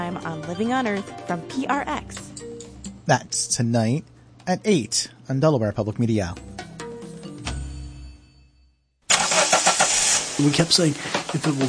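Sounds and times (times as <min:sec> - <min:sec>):
speech: 0:00.2 - 0:02.5, 0:03.1 - 0:06.5, 0:10.4 - 0:11.6
car engine turning over with a low rough rumble: 0:09.1 - 0:11.6.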